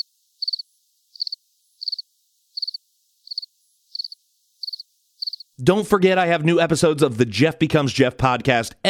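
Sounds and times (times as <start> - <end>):
crickets chirping: 0.0 - 5.6
speech: 5.6 - 8.8.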